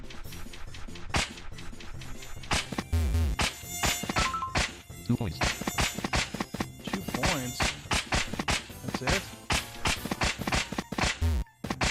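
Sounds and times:
swatting slaps: 0:00.5 - 0:04.8, 0:05.4 - 0:11.8
mosquito buzzing: 0:02.1 - 0:08.4
speech: 0:05.1 - 0:05.6, 0:07.4 - 0:07.7.

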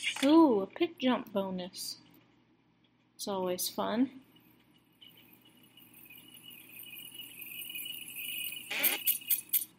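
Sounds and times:
speech: 0:00.2 - 0:02.1, 0:03.2 - 0:04.3
faint steady electronic tone: 0:04.3 - 0:09.6
bright chiming video game coin pickup jingles: 0:05.0 - 0:09.7.

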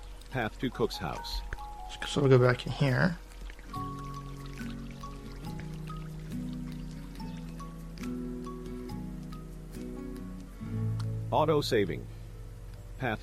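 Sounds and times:
trickling fountain water in a video game: 0:00.0 - 0:10.5
soft sustained tones: 0:00.0 - 0:13.2
speech: 0:00.3 - 0:04.2, 0:11.3 - 0:12.2, 0:13.0 - 0:13.2.

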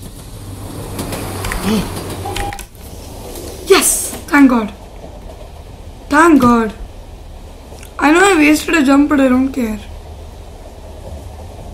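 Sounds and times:
video game train rumbling past: 0:00.0 - 0:11.7
speech: 0:01.6 - 0:02.0, 0:03.8 - 0:04.8, 0:06.1 - 0:06.8, 0:08.0 - 0:09.9.

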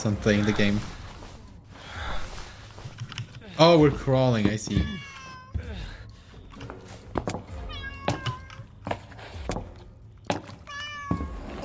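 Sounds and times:
speech: 0:00.0 - 0:01.0, 0:03.6 - 0:05.1
cat meowing in a video game set during the Second World War: 0:04.7 - 0:05.6, 0:07.7 - 0:08.6, 0:10.7 - 0:11.4.

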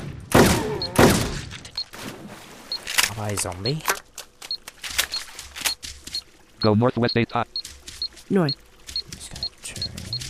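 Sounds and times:
video game gunfire shooting a zombie in the sewers: 0:00.0 - 0:01.5
speech: 0:03.2 - 0:04.0, 0:06.6 - 0:07.6, 0:08.3 - 0:08.6
high electronic beeps: 0:06.6 - 0:08.6.

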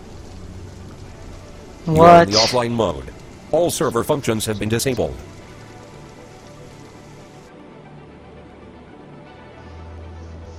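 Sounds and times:
low continuous hum: 0:00.0 - 0:07.4
steady rain in a flight simulator game: 0:00.0 - 0:10.5
speech: 0:01.8 - 0:05.4.

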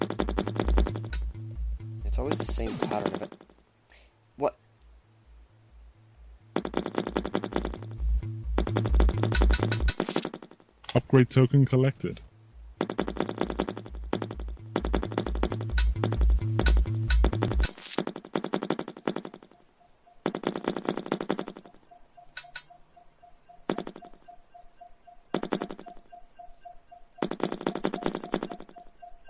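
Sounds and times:
machine-gun fire in a video game: 0:00.0 - 0:01.2, 0:02.2 - 0:03.5, 0:06.6 - 0:08.0, 0:08.6 - 0:10.5, 0:12.8 - 0:22.8, 0:23.5 - 0:29.2
speech: 0:02.2 - 0:03.5, 0:04.4 - 0:04.6, 0:11.0 - 0:12.2.

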